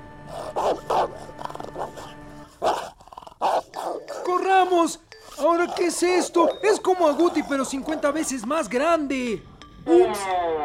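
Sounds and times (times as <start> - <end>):
dog barking: 0.3 - 4.3
dog growling: 0.3 - 4.4, 5.3 - 8.4
speech: 4.8 - 10.6.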